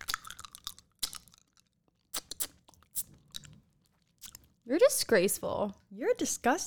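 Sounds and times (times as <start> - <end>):
Pop Rocks candy crackling while being eaten: 0.0 - 3.6
faint crunchy chewing: 0.0 - 4.6
speech: 4.7 - 6.6.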